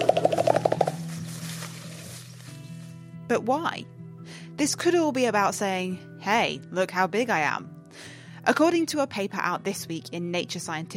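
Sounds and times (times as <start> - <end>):
mountain gorilla chest beating in forest: 0.0 - 1.4
speech: 3.3 - 4.0, 4.6 - 10.9.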